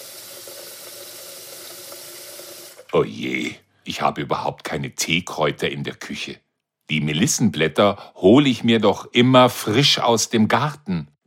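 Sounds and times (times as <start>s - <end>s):
water running from a kitchen tap into a pot: 0.0s - 2.9s
speech: 2.9s - 11.1s.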